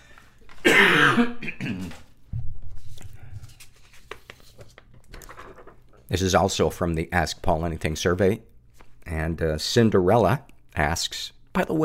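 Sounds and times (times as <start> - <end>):
loud cough: 0.6 - 2.0
rasping throat clearing: 0.6 - 2.0
speech: 1.2 - 1.7, 6.2 - 8.5, 9.3 - 11.8.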